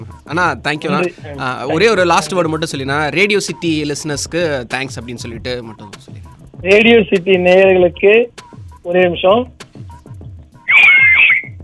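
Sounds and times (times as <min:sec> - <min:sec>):
steady thumping bass beat: 0:00.0 - 0:11.6
speech: 0:00.3 - 0:09.6
loud shrill human whistle: 0:10.7 - 0:11.6.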